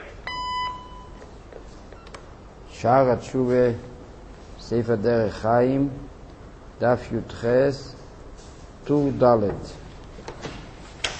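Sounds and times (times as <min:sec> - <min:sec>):
high electronic beep from an automated phone menu system: 0:00.3 - 0:01.2
speech: 0:02.8 - 0:03.9, 0:04.7 - 0:06.1, 0:06.8 - 0:08.0, 0:08.8 - 0:09.8.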